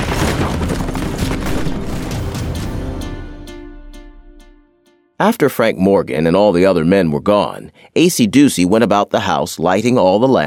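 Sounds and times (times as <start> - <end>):
dense sustained volley of gunfire: 0.0 - 3.0
speech: 5.2 - 10.4.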